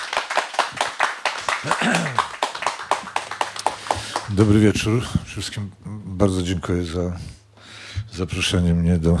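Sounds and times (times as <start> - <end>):
small audience applauding a guest: 0.0 - 4.6
speech: 4.3 - 7.4, 8.2 - 9.1.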